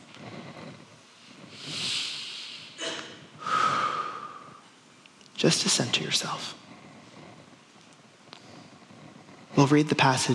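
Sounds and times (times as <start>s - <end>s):
soft deep breaths during a guided listening exercise: 0.0s - 9.6s
speech: 5.4s - 6.7s, 9.6s - 10.3s.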